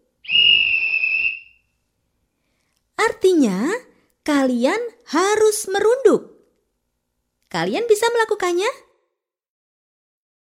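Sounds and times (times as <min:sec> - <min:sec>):
long whistle blast used as a signal in a children's earthquake-drill game: 0:00.2 - 0:01.7
speech: 0:03.3 - 0:06.3, 0:07.5 - 0:08.8.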